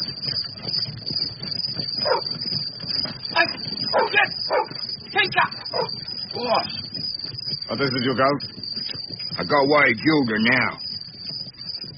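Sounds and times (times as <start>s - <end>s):
two dogs barking and yipping: 0.0s - 11.9s
speech: 3.9s - 6.8s, 7.7s - 8.6s, 9.4s - 10.8s.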